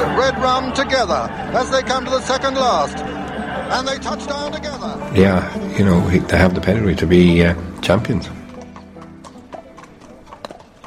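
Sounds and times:
laughter: 0.0s - 8.3s
speech: 0.2s - 3.1s, 3.7s - 8.4s
horses' hooves clip-clopping walking in from the fields to a racing stable: 5.8s - 10.8s.

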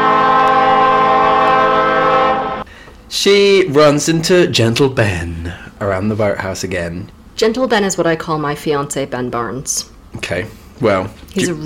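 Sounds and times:
klaxon horn blaring: 0.0s - 2.7s
speech: 3.1s - 11.6s.

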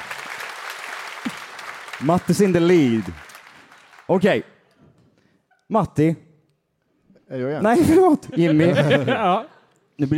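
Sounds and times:
small group applauding: 0.0s - 4.8s
speech: 2.0s - 3.2s, 4.1s - 4.5s, 5.7s - 6.2s, 7.3s - 10.1s
laughter: 7.7s - 9.8s.

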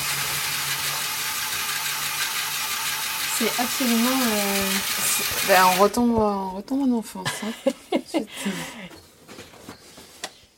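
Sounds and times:
small motor powering a Lego fairground model: 0.0s - 5.9s
speech: 3.4s - 9.0s.

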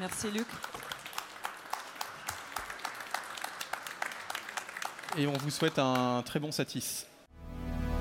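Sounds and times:
speech: 0.0s - 0.8s, 5.2s - 7.1s
audience applause: 0.0s - 6.3s.

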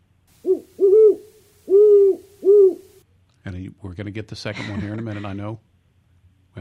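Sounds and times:
owl hooting: 0.4s - 3.0s
speech: 3.5s - 5.7s.

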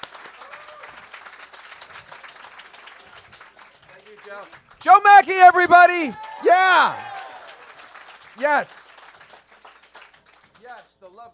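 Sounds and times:
crowd applauding: 0.0s - 10.8s
speech: 4.3s - 7.1s, 8.4s - 8.8s
faint voice cheering: 4.8s - 7.6s, 8.4s - 8.8s.

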